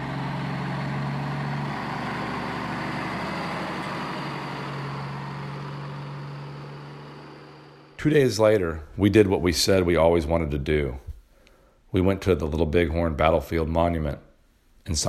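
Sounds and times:
heavy trucks rumbling past in low gear: 0:00.0 - 0:08.3
speech: 0:08.0 - 0:11.0, 0:11.9 - 0:14.2, 0:14.8 - 0:15.0.

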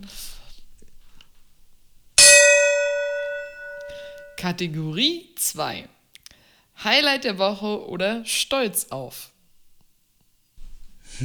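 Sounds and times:
metallic gong strike: 0:02.2 - 0:04.4
speech: 0:04.4 - 0:06.0, 0:06.8 - 0:09.3.

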